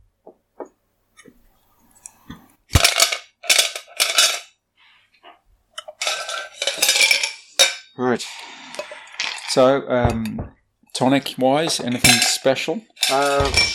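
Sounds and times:
glasses and cutlery clinking while mixing a gin and tonic: 2.8 - 4.5, 5.8 - 8.0, 11.7 - 13.7
speech: 8.0 - 8.6, 9.5 - 13.7.

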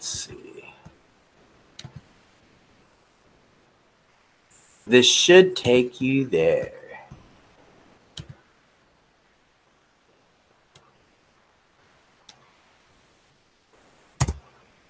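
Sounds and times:
computer mouse clicks on a link: 1.8 - 2.0, 8.2 - 8.4, 14.2 - 14.4
speech: 4.9 - 6.8.

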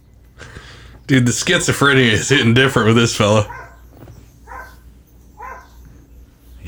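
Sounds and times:
speech: 1.1 - 3.6
dog barking: 3.4 - 5.9.

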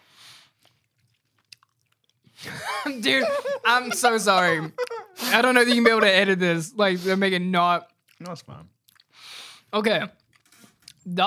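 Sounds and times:
wet munching and chewing of a snack: 0.1 - 2.4, 8.0 - 9.4
laughter: 2.4 - 6.4
speech: 2.5 - 8.8, 9.7 - 10.2, 11.0 - 11.2.

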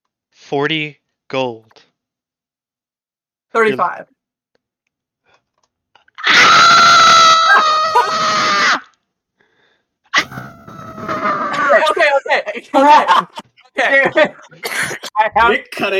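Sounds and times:
speech: 0.5 - 1.9, 3.5 - 4.2, 11.8 - 15.9
person screaming: 6.2 - 8.9, 10.2 - 11.9
strained shrill vocal outbursts: 6.2 - 8.9, 10.1 - 12.4
laughter: 10.9 - 15.8.

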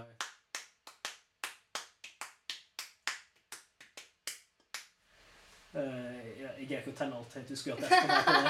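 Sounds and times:
sharp hand claps in irregular groups of two and three: 0.0 - 5.0
speech: 5.8 - 8.4
laughter: 7.8 - 8.4.

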